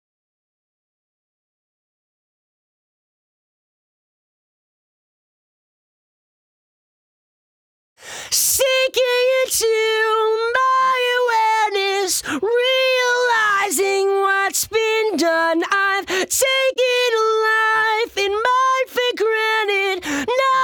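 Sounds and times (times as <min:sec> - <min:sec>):
lead vocals: 0:08.0 - 0:20.6.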